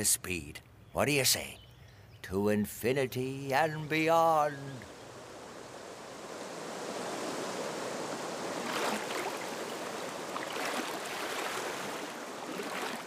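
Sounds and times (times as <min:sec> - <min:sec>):
speech: 0:00.0 - 0:01.6, 0:02.2 - 0:05.0
flowing river water: 0:04.6 - 0:13.0.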